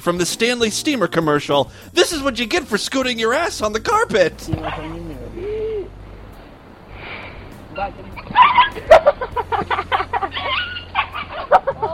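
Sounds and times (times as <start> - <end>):
speech: 0.0 - 5.0, 7.8 - 9.3
dog yelping as it is swung around: 4.5 - 5.2, 7.8 - 9.2, 9.9 - 11.9
laughter: 4.5 - 6.0, 8.1 - 11.9.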